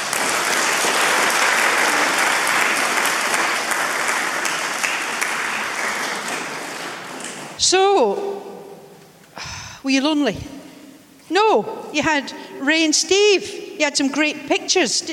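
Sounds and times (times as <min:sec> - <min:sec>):
sizeable crowd clapping: 0:00.0 - 0:07.6
speech: 0:07.7 - 0:08.3, 0:09.8 - 0:10.5, 0:11.4 - 0:15.1.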